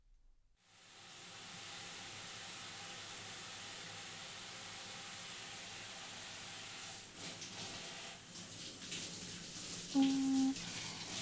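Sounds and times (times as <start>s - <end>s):
warm water pouring over hair as it is rinsed: 7.2s - 11.2s.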